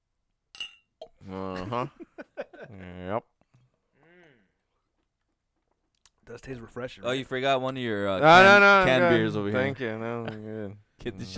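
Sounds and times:
glasses clinking together in a toast: 0.5 - 1.2
speech: 1.3 - 3.3, 6.3 - 11.3.

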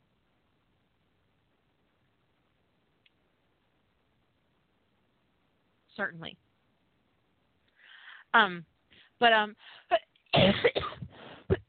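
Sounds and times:
speech: 6.0 - 6.5, 8.3 - 11.0
dry coughing: 10.4 - 11.2.

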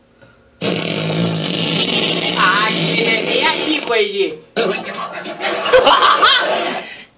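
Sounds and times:
fart sound effect: 0.6 - 4.0
speech: 3.9 - 6.8
laughter: 4.7 - 7.1.

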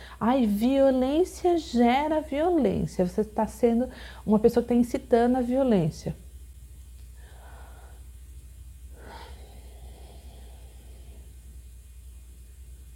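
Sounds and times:
quiet hum: 0.0 - 12.9
speech: 0.2 - 6.2
slow deep breaths: 7.1 - 8.2, 8.9 - 11.6.

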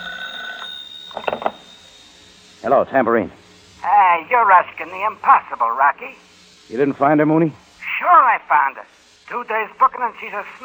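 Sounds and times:
telephone bell ringing: 0.0 - 2.5
speech: 2.6 - 3.4, 4.2 - 10.6.

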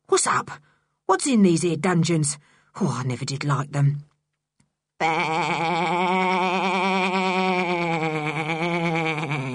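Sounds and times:
speech: 0.2 - 4.1, 5.0 - 6.4
voice imitating a sheep bleating: 5.0 - 9.5.

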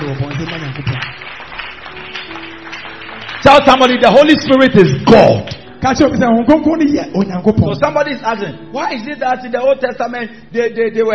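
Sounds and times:
audience clapping hands for God: 0.0 - 5.7
speech: 3.5 - 11.1.

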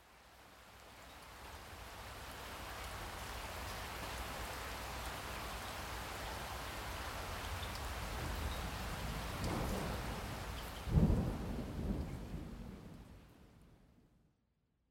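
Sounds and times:
steady rain: 0.0 - 13.9.

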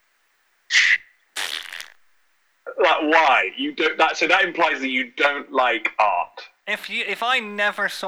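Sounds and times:
voice imitating an angry fart: 0.8 - 2.0
speech: 2.8 - 8.0.

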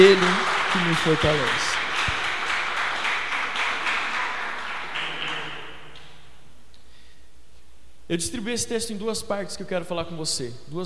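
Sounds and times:
speech: 0.0 - 1.9, 8.1 - 10.8
audience applauding: 0.0 - 6.2.

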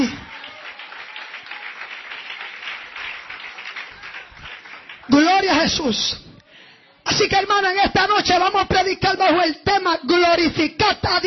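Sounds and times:
congregation applauding: 0.0 - 5.9
speech: 5.5 - 6.2, 7.2 - 11.2.

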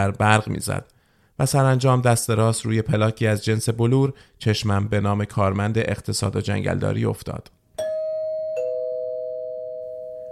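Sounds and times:
speech: 0.0 - 7.6
two-tone doorbell on an apartment door chiming: 7.8 - 10.2.

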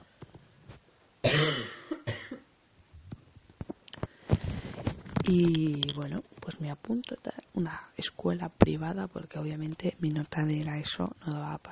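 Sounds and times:
person coughing: 1.2 - 2.5
breathing: 4.0 - 4.9
speech: 5.3 - 11.7.

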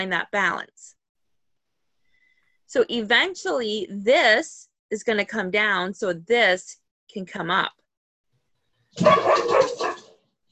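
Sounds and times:
speech: 0.0 - 1.0, 2.7 - 7.8, 9.0 - 10.0
dog barking: 9.0 - 10.2.

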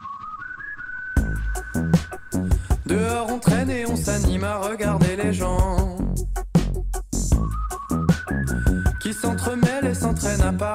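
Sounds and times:
steady high whistle-like tone in a song intro: 0.0 - 3.9, 7.3 - 10.7
rich harmonic notes in short rhythmic bursts: 0.9 - 10.7
speech: 2.9 - 6.0.

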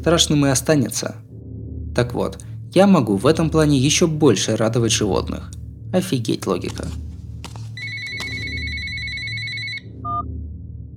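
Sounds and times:
speech: 0.0 - 1.3, 2.0 - 7.0
low rumble: 0.0 - 10.9
phone alarm ringing with electronic tones: 7.8 - 10.2.

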